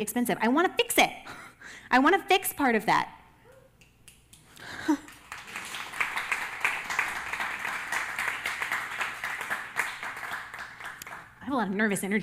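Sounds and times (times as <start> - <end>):
speech: 0.0 - 3.2, 11.5 - 12.2
audience clapping: 4.1 - 11.4.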